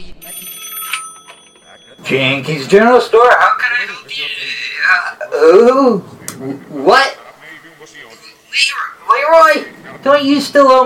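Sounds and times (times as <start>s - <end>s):
telephone ringing as an outgoing call is placed: 0.2s - 4.1s
speech: 2.1s - 4.3s, 4.9s - 7.1s, 7.8s - 10.8s.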